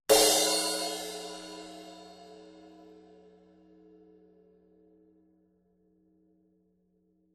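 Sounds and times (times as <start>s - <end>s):
18-inch crash cymbal: 0.1s - 2.9s.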